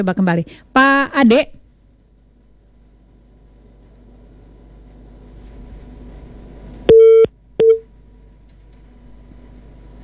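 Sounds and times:
speech: 0.0s - 1.6s
telephone busy tone after a dropped call: 6.9s - 7.8s.

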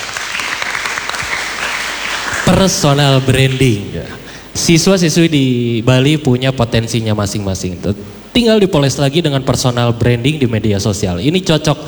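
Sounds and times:
audience applause at a talk session: 0.0s - 3.8s
speech: 2.5s - 11.8s.

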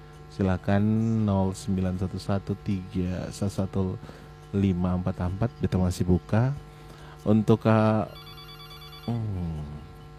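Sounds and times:
speech: 0.4s - 8.2s, 9.0s - 9.9s
telephone ringing for an incoming call: 7.9s - 9.6s.

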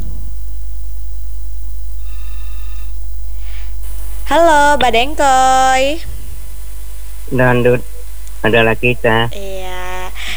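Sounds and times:
steady low hum: 0.0s - 10.3s
telephone ringing with high electronic ring tones: 3.8s - 10.2s
speech: 4.3s - 6.1s, 7.3s - 9.8s.

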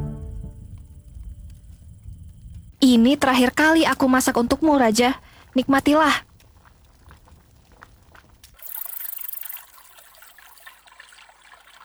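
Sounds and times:
speech: 2.8s - 6.3s
flowing river water: 4.6s - 11.8s.

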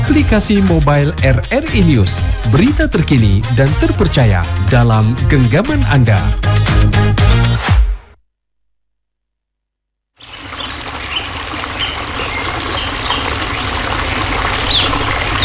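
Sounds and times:
speech: 0.2s - 7.1s
bird chirps: 10.2s - 13.8s
river water littered with plastic rushing: 10.2s - 15.4s.

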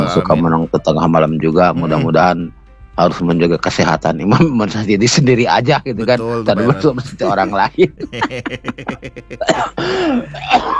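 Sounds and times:
person coughing: 0.0s - 0.6s, 1.7s - 2.3s, 6.0s - 10.7s
raspy throat clearing: 0.0s - 0.7s, 6.0s - 10.7s
strained vocal sound: 0.0s - 3.5s, 5.2s - 10.7s
laughter: 0.0s - 3.7s, 5.2s - 10.7s
speech: 0.1s - 10.7s.

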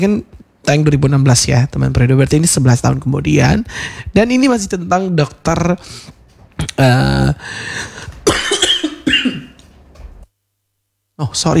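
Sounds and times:
speech: 0.0s - 8.1s, 11.2s - 11.5s
person coughing: 8.0s - 9.6s
person clearing throat: 8.2s - 9.6s.

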